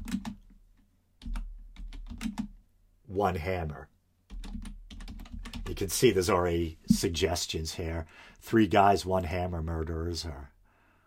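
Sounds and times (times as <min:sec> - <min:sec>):
typing on a computer keyboard into a search bar: 0:00.0 - 0:00.6, 0:01.2 - 0:02.6, 0:04.3 - 0:05.8
speech: 0:03.1 - 0:03.9, 0:05.7 - 0:10.5.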